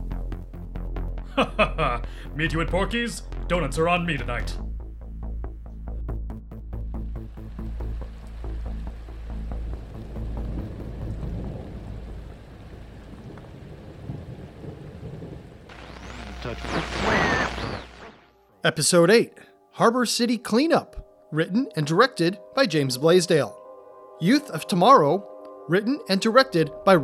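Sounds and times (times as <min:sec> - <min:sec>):
laughter: 0:01.3 - 0:02.1
speech: 0:01.4 - 0:04.6, 0:18.7 - 0:23.6, 0:24.2 - 0:27.0
rain hissing during a storm: 0:07.1 - 0:18.3
deep storm rumble: 0:07.4 - 0:18.2
crackling burst of thunder: 0:09.4 - 0:18.4.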